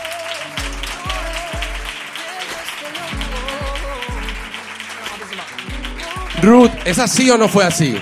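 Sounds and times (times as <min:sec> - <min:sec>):
crowd applause: 0:00.0 - 0:08.0
thumping musical beat: 0:00.6 - 0:04.6, 0:05.5 - 0:07.7
speech: 0:06.4 - 0:08.0.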